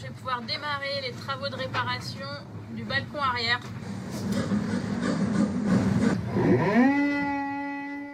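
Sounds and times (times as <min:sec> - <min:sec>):
speech: 0:00.2 - 0:05.4, 0:06.0 - 0:07.1
saw and sander grinding during boat repair: 0:05.0 - 0:08.1
motor spinning up into a steady whine: 0:06.3 - 0:08.1.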